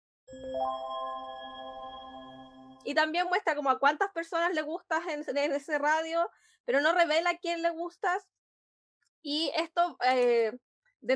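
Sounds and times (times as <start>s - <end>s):
dating app electronic alert chime: 0.3s - 2.9s
speech: 2.8s - 8.4s, 9.2s - 11.1s.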